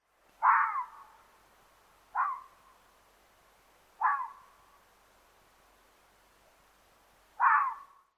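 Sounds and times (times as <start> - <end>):
red fox: 0.4 - 1.3, 2.1 - 2.8, 4.0 - 4.7, 7.4 - 8.0.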